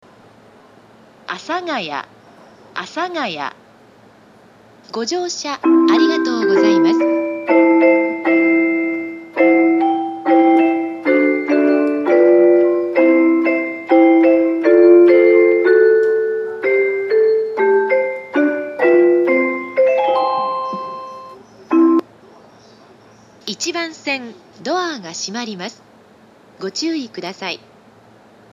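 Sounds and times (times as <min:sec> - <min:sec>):
train arrival announcement: 0:04.9 - 0:25.8
train departure melody: 0:05.6 - 0:22.1.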